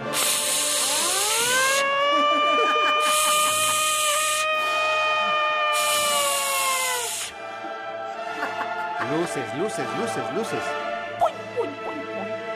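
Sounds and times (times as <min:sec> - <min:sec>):
bursts of harsh noise: 0:00.0 - 0:07.4
siren wailing: 0:00.8 - 0:07.3
laughter: 0:01.8 - 0:04.2, 0:07.4 - 0:10.2, 0:11.4 - 0:12.4
speech: 0:09.4 - 0:10.8.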